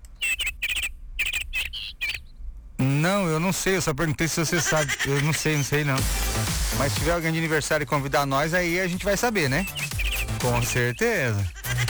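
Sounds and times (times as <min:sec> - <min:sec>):
little bird chirping in high-pitched tweets: 0:00.0 - 0:02.4, 0:09.4 - 0:11.8
speech: 0:02.8 - 0:09.8, 0:10.4 - 0:11.8
laughter: 0:04.3 - 0:07.0, 0:10.3 - 0:11.8.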